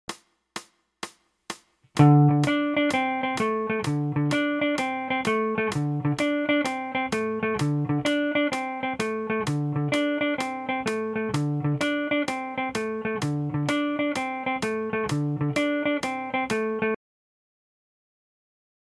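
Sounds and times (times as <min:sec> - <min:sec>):
12 bar blues music: 0:01.9 - 0:17.0.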